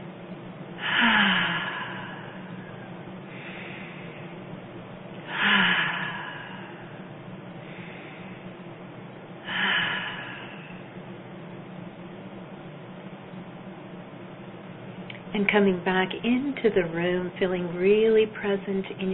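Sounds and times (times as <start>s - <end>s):
slow cleansing breaths in through the nose and out through the mouth during guided kundalini meditation: 0.8s - 11.2s
speech: 15.4s - 19.1s.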